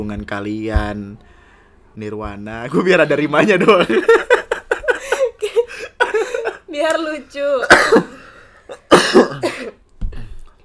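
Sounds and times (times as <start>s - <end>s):
speech: 0.0s - 1.4s, 2.0s - 4.4s, 6.8s - 8.1s
laughter: 3.4s - 6.7s
harsh coughing: 7.6s - 10.3s.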